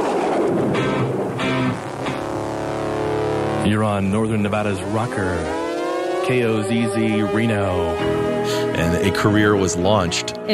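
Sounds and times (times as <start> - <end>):
loud deep rumble of thunder: 0.0 - 8.4
faint sustained tonal hum: 0.1 - 10.5
speech: 3.6 - 5.6, 6.3 - 10.5.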